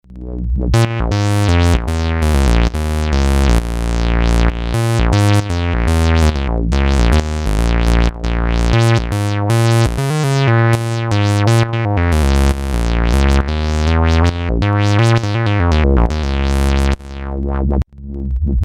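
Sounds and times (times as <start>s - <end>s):
synthesizer LFO sound: 0.0s - 17.8s.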